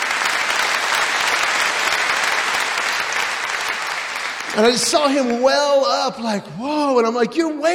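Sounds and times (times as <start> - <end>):
audience applause: 0.0 - 6.1
speech: 4.6 - 7.7.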